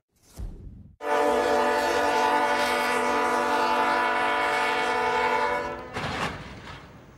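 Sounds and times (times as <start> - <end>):
train horn blast: 1.0 - 6.3
train clipping a vehicle-hauling truck on the tracks at a crossing: 5.8 - 7.1.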